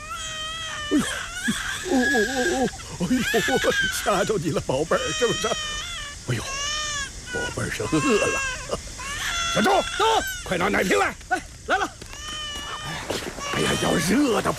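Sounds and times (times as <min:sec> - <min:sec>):
hungry baby crying: 0:00.0 - 0:10.6, 0:12.1 - 0:14.4.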